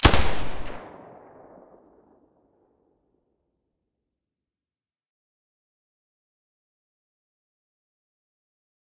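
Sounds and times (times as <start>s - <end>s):
silenced Galil rifle shot: 0.0s - 1.9s.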